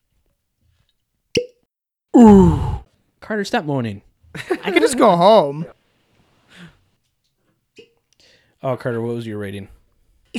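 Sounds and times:
cork popping out of a whiskey bottle: 0:01.4 - 0:01.6
speech: 0:02.2 - 0:02.7, 0:03.3 - 0:05.8, 0:08.6 - 0:10.3.

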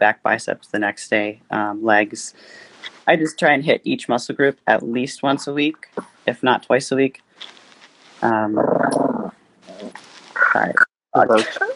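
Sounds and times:
speech: 0:00.0 - 0:07.6, 0:08.2 - 0:09.1, 0:10.6 - 0:11.7
small pet dog growling: 0:08.5 - 0:10.6.

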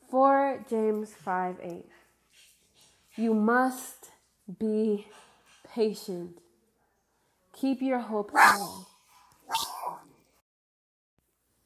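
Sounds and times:
speech: 0:00.2 - 0:02.5, 0:03.2 - 0:05.2, 0:05.8 - 0:06.4, 0:07.6 - 0:08.9, 0:09.5 - 0:10.0
dog barking: 0:08.4 - 0:10.1.

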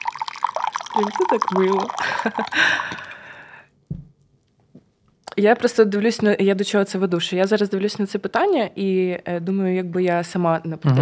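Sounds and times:
green tea pouring into a cup: 0:00.0 - 0:03.5
speech: 0:01.0 - 0:03.1, 0:05.4 - 0:11.0
soft knocks: 0:03.9 - 0:04.2.

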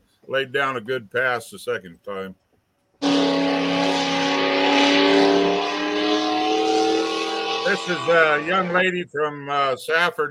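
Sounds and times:
speech: 0:00.3 - 0:02.4, 0:07.7 - 0:10.2
small block pulling tractor engine revving at a tractor pull: 0:03.0 - 0:08.8.

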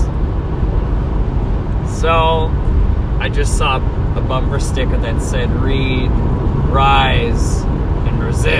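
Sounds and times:
truck rumbling past on the road: 0:00.0 - 0:08.5
speech: 0:02.0 - 0:08.5.

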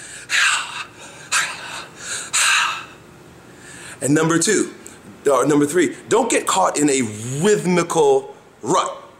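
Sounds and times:
heavy breathing while dancing: 0:00.0 - 0:04.0
speech: 0:04.0 - 0:09.0.

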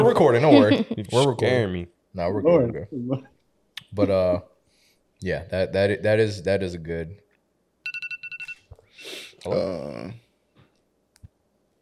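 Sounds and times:
speech: 0:00.1 - 0:03.3, 0:03.9 - 0:04.5, 0:05.2 - 0:07.2, 0:09.0 - 0:10.2
phone alarm bright electronic beeps: 0:07.8 - 0:08.8.

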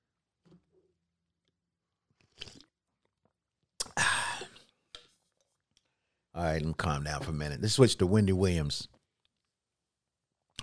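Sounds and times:
person slurping hot tea: 0:02.2 - 0:02.8
person swallowing hot tea: 0:02.2 - 0:02.8, 0:03.8 - 0:04.6
speech: 0:06.4 - 0:09.0.

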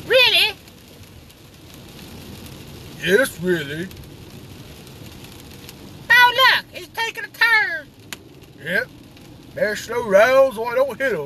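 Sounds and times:
rain on a hard surface: 0:00.0 - 0:11.2
speech: 0:03.0 - 0:04.1, 0:08.6 - 0:09.0, 0:09.6 - 0:11.2.

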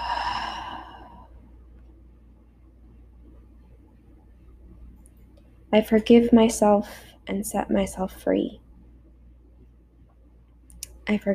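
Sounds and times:
deep breath out through the mouth during a guided breathing exercise: 0:00.0 - 0:01.4
quiet low hum: 0:00.0 - 0:11.3
speech: 0:05.7 - 0:08.6, 0:11.1 - 0:11.3.

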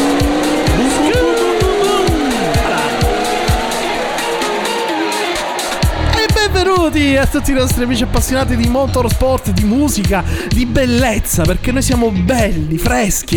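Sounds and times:
Ferrari race car accelerating hard at race start on the rev limiter: 0:00.0 - 0:10.0
race car tires squealing: 0:00.0 - 0:10.0
speech: 0:06.9 - 0:13.3.

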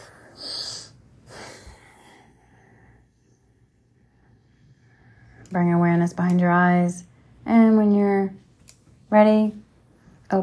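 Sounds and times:
person breathing deeply during a guided breathwork exercise: 0:00.0 - 0:05.5
speech: 0:05.5 - 0:08.4, 0:09.1 - 0:09.6.

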